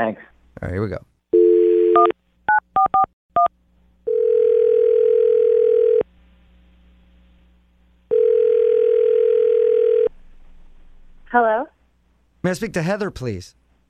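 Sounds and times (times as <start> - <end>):
speech: 0.0 - 1.1, 11.3 - 11.7, 12.4 - 13.6
phone ringing tone on the line: 1.4 - 2.1, 4.1 - 6.0, 8.1 - 10.1.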